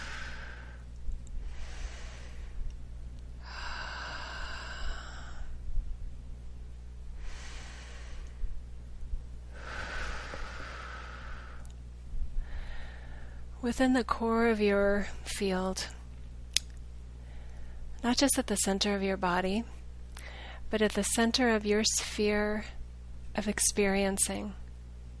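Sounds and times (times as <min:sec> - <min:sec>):
deep breath drawn in and let out during a guided breathing exercise: 0:00.0 - 0:02.8, 0:03.4 - 0:05.8, 0:07.0 - 0:08.7, 0:09.4 - 0:13.6, 0:17.2 - 0:17.9, 0:20.2 - 0:20.7
steady low hum: 0:00.0 - 0:25.1
speech: 0:13.6 - 0:16.0, 0:18.0 - 0:19.8, 0:20.7 - 0:22.8, 0:23.4 - 0:24.6.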